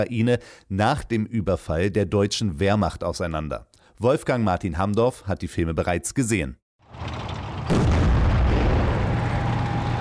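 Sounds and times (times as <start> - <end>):
speech: 0.0 - 7.8
long deep rumbling roar of debris: 6.8 - 9.9
powerful explosion of houses and bridges in film footage: 7.6 - 9.9.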